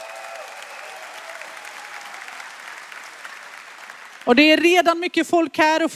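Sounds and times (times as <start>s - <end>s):
audience applauding a choir: 0.0s - 4.4s
speech: 4.2s - 5.9s.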